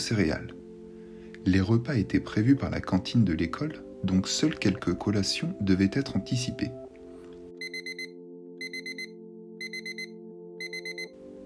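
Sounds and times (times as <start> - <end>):
speech: 0.0 - 0.6, 1.4 - 6.8
electronic alarm clock beeping in bursts of quick tones: 7.6 - 11.1.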